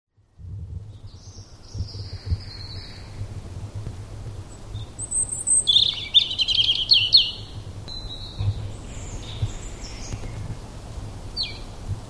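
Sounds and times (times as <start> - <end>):
European robin singing: 0.8 - 3.2, 4.4 - 10.6, 11.3 - 11.8.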